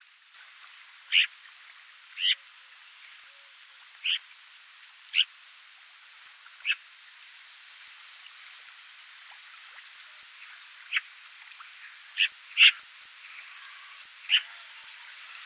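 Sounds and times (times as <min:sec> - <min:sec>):
faint high hiss: 0:00.0 - 0:15.4
Eurasian magpie Pica pica calls: 0:01.1 - 0:01.3, 0:04.0 - 0:04.2, 0:12.2 - 0:12.8, 0:13.7 - 0:14.9.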